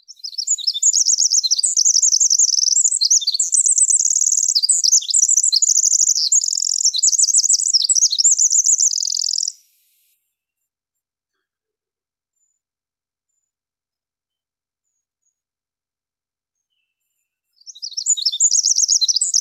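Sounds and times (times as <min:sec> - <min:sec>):
Winter wren song of high tinkling trills and chatters: 0:00.0 - 0:09.7, 0:17.6 - 0:19.3.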